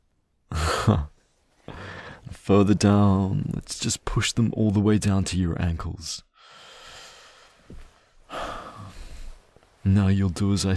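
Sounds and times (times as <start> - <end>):
speech: 0.6 - 1.1, 2.4 - 6.3, 9.8 - 10.7
fast heavy breathing: 1.6 - 2.3, 6.4 - 9.6.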